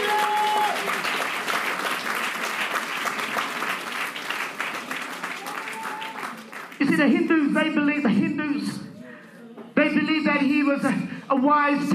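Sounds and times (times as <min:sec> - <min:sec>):
large audience applauding in praise to God: 0:00.0 - 0:06.8
speech: 0:06.8 - 0:08.9, 0:09.8 - 0:11.9.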